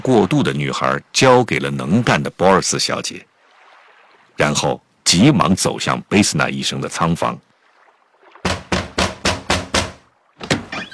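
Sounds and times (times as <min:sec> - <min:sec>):
speech: 0:00.0 - 0:03.3, 0:04.4 - 0:07.5
knocks on a cabin door: 0:08.4 - 0:10.6
heavier clunk as the cabin door is pushed open: 0:08.5 - 0:10.9.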